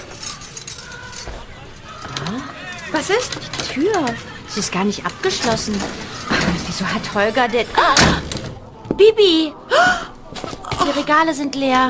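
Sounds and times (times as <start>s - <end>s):
keys jangling as a key is handed over: 0.0s - 7.5s
speech: 2.3s - 8.2s, 9.0s - 10.1s, 10.8s - 11.8s.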